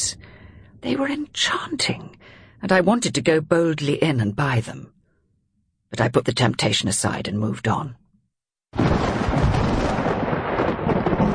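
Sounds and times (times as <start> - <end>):
speech: 0.1 - 5.0, 5.9 - 8.0
thunderclap: 8.8 - 11.3.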